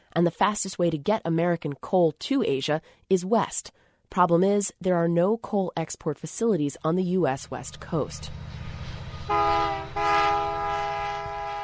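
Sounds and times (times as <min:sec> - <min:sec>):
speech: 0:00.2 - 0:08.6
coal freight train rumbling past: 0:07.4 - 0:11.6
freight train air horn blaring long loud chords: 0:09.2 - 0:11.6.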